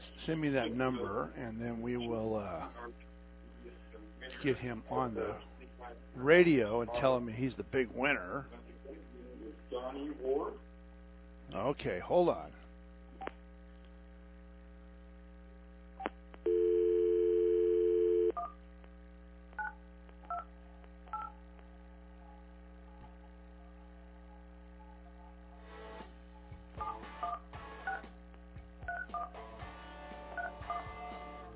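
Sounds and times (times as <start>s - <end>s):
low constant electrical hum: 0.0s - 31.5s
speech: 0.2s - 8.6s, 11.5s - 12.6s
telephone dial tone: 16.4s - 18.5s.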